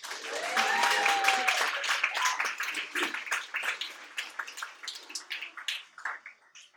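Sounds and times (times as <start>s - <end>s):
crowd cheering: 0.0s - 3.8s
crowd applauding loudly: 0.0s - 6.4s.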